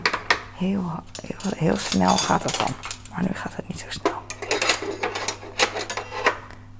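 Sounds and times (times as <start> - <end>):
speech: 0.6 - 4.2
cutlery clinking while being put away: 1.2 - 3.2, 4.3 - 6.3.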